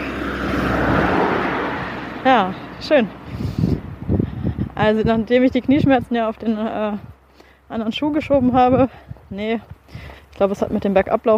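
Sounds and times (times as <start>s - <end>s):
car driving past: 0.0s - 3.9s
speech: 2.3s - 3.4s, 4.8s - 7.1s, 7.7s - 11.3s.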